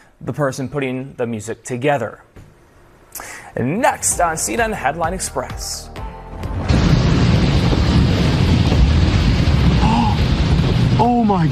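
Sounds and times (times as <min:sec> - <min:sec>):
speech: 0:00.2 - 0:02.4, 0:03.6 - 0:06.0, 0:11.0 - 0:11.4
powerful explosion with deep rumbling roar: 0:06.4 - 0:11.4.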